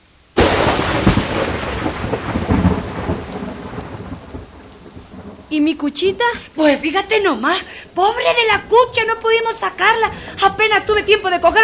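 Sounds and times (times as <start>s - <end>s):
steady heavy rain: 0.0s - 11.6s
loud crash of thunder: 0.4s - 5.5s
speech: 5.5s - 11.6s.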